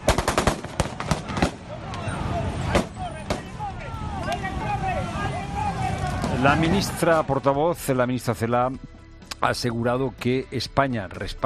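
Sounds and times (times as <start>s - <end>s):
sharp gunshots echoing down a city street: 0.0s - 1.7s, 2.7s - 3.5s
crowd voices: 0.8s - 7.8s
speech: 6.4s - 11.4s.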